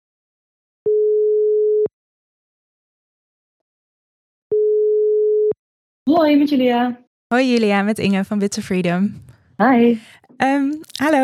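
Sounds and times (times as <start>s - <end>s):
telephone ringing tone while a call is being placed: 0.9s - 1.9s, 4.5s - 5.6s
speech: 6.1s - 11.2s.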